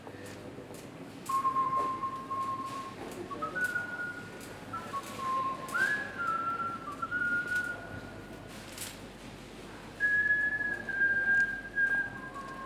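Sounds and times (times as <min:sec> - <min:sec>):
man whistling a classical melody: 0:01.3 - 0:08.0, 0:10.0 - 0:12.6.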